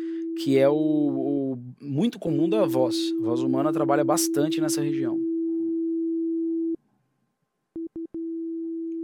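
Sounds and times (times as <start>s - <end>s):
sine test tones at 250-350 Hz: 0.0s - 1.4s, 2.2s - 6.8s, 7.8s - 9.0s
speech: 0.4s - 5.3s.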